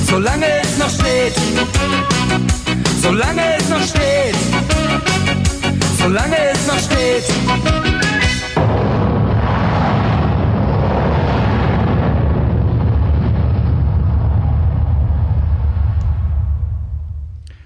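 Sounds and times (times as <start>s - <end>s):
speech: 0.1s - 2.2s, 3.1s - 8.0s
huge explosion with long dense rumbling roar: 8.5s - 17.3s.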